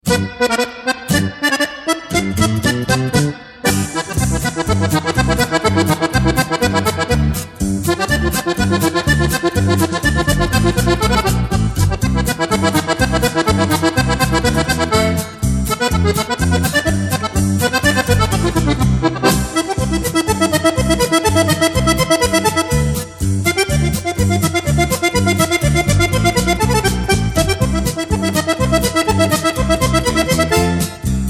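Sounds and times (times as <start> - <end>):
polka music: 0.0 - 31.2.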